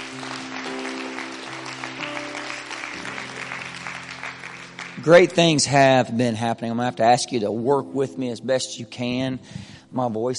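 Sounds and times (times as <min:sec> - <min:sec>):
audience clapping hands: 0:00.0 - 0:06.0
sustained organ-like chords: 0:00.0 - 0:08.4
speech: 0:05.0 - 0:10.3.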